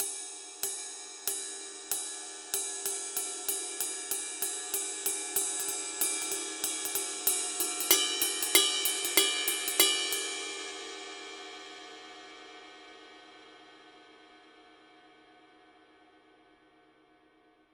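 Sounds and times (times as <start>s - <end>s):
20-inch Paiste 2002 ride cymbal pattern: 0.0s - 10.8s.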